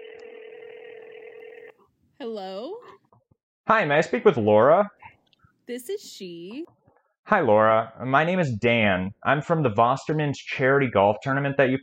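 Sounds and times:
steady telephone line tone of an outgoing phone call: 0.0 - 1.8
speech: 2.2 - 3.0, 3.7 - 5.0, 5.7 - 11.8.

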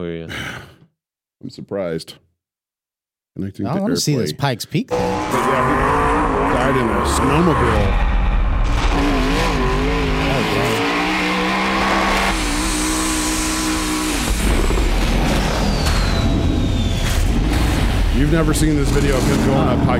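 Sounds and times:
speech: 1.4 - 2.3, 3.4 - 8.1, 18.3 - 19.9
race car engine revving while doing donuts: 4.9 - 19.9
race car tires squealing and skidding: 5.1 - 17.7.

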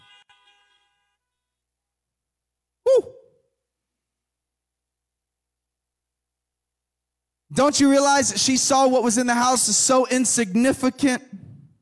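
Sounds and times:
car horns honking: 0.0 - 1.2
speech: 7.5 - 11.4.

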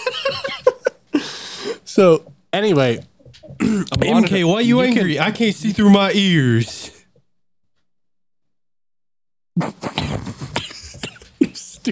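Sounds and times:
laughter: 0.0 - 7.0
speech: 0.1 - 0.6, 2.0 - 6.8
person coughing off-axis from the microphone: 3.6 - 4.2, 9.6 - 11.8.

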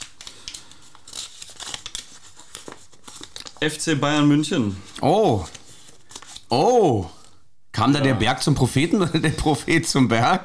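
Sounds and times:
folded paper slip drawn from a lot pot being unfolded: 0.0 - 6.5
speech: 3.6 - 5.6, 6.5 - 7.2, 7.8 - 10.4.

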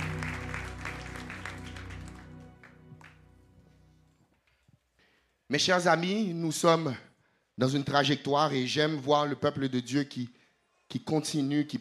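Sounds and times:
church congregation applauding the worship team at a service: 0.0 - 4.5
speech: 5.5 - 11.7.

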